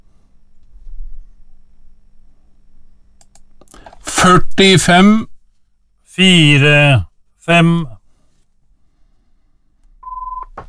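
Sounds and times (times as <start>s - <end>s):
speech: 4.2s - 5.3s, 6.2s - 7.9s
telephone electronic ringing tone after dialing: 10.0s - 10.5s.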